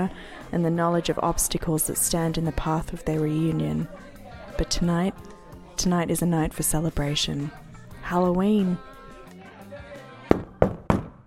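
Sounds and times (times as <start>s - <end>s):
speech: 0.0s - 8.9s
loud sharp knocking on a door: 10.3s - 11.2s.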